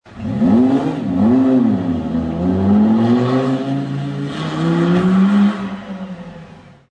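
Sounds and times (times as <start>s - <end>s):
Lamborghini Gallardo accelerating heard from outside: 0.1s - 6.9s.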